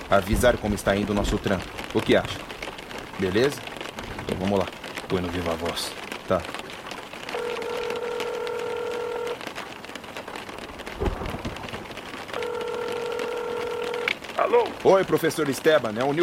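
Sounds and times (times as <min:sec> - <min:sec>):
constant hiss of rain during a storm: 0:00.0 - 0:16.2
speech: 0:00.1 - 0:02.5, 0:03.2 - 0:03.7, 0:04.3 - 0:06.6, 0:14.6 - 0:16.2
phone keypad dialing tones on speakerphone: 0:07.3 - 0:09.4, 0:12.3 - 0:14.2.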